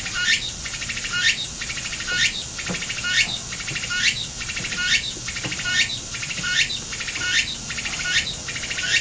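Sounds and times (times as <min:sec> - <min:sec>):
Tsukutsukuboshi cicada singing in Japan: 0:00.0 - 0:08.9.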